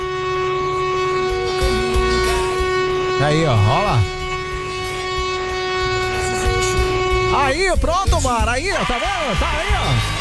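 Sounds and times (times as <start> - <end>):
loud horn blaring with a deep train-like tone: 0.0 - 10.1
speech: 3.2 - 4.2, 7.4 - 10.1.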